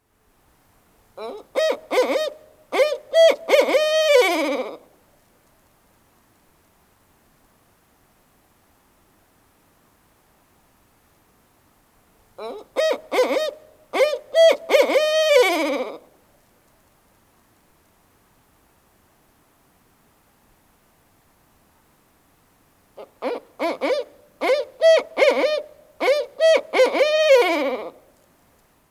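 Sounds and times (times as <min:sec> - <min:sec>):
barred owl calling: 0:01.2 - 0:04.9, 0:12.4 - 0:16.1, 0:23.0 - 0:28.1.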